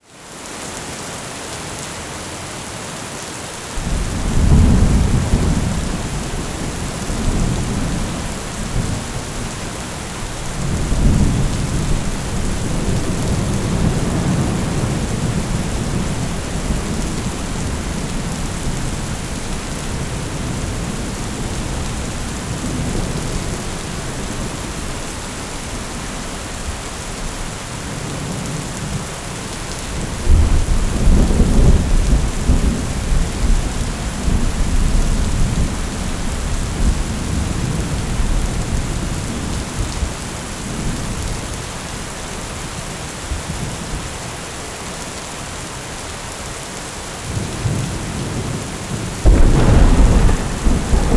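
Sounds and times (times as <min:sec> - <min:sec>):
thunderstorm rain: 0:03.8 - 0:51.1.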